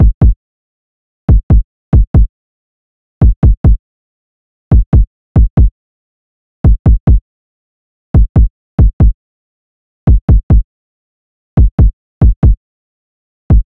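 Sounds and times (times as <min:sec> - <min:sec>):
kick drum loop: 0:00.0 - 0:00.4, 0:01.3 - 0:02.3, 0:03.2 - 0:03.8, 0:04.7 - 0:05.7, 0:06.7 - 0:07.2, 0:08.2 - 0:09.2, 0:10.1 - 0:10.6, 0:11.6 - 0:12.6.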